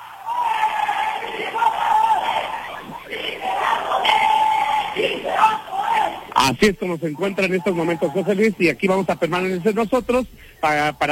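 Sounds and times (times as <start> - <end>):
people shouting: 0.0 - 8.6
large crowd of protesters chanting a slogan in unison: 0.0 - 10.0
speech: 6.4 - 11.1.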